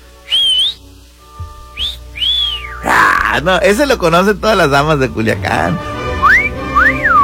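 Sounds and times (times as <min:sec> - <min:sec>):
person whistling flirtatiously: 0:00.2 - 0:00.8, 0:01.7 - 0:02.8, 0:06.1 - 0:07.2
speech: 0:03.3 - 0:05.9.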